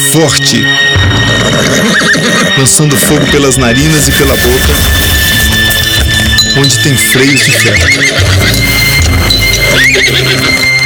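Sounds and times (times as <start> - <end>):
speech: 0.2 - 5.4, 6.5 - 8.7, 9.7 - 10.8
horse whinnying with a high wavering neigh: 1.1 - 3.6, 7.0 - 10.8.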